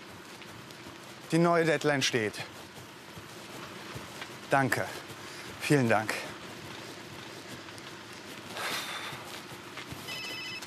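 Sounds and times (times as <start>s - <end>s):
speech: 1.3s - 2.6s, 4.5s - 5.0s, 5.7s - 6.2s
telephone ringing in high-pitched electronic bursts: 10.1s - 10.6s.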